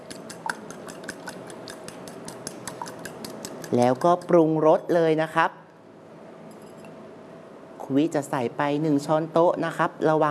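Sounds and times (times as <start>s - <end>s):
fork beating ingredients in a bowl: 0.0s - 4.4s
speech: 3.7s - 5.6s, 7.9s - 10.2s.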